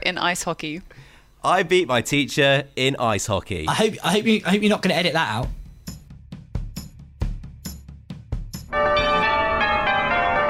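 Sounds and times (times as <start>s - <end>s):
speech: 0.1s - 5.6s
rhythmic thumping beats: 4.5s - 9.4s
doorbell ringing: 8.7s - 10.4s.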